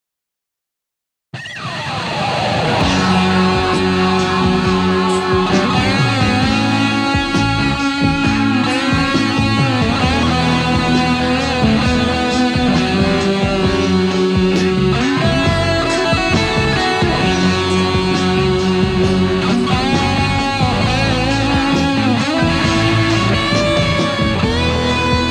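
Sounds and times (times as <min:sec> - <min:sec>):
electric guitar solo through a fuzz pedal: 0:01.4 - 0:25.2.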